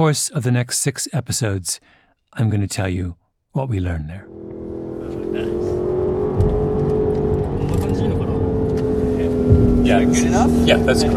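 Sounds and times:
speech: 0.0s - 4.4s, 5.3s - 5.8s, 9.9s - 11.1s
car engine revving and accelerating heard from inside the car: 4.2s - 11.1s
rising whine of the car: 4.3s - 11.1s.

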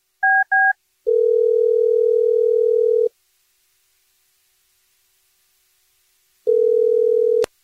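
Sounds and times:
phone line dial tone: 0.3s - 3.1s, 6.5s - 7.5s.

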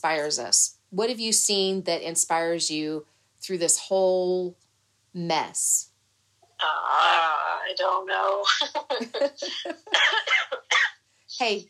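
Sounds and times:
speech: 0.0s - 4.6s, 5.2s - 5.9s, 6.6s - 10.6s, 11.3s - 11.6s
harsh sputtering coughs after choking on saliva: 9.5s - 11.0s.

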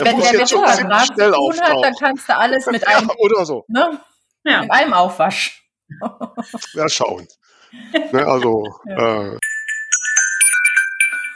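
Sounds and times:
speech: 0.0s - 9.4s
laughter: 6.0s - 9.4s
phone message notification chime: 9.4s - 11.3s.

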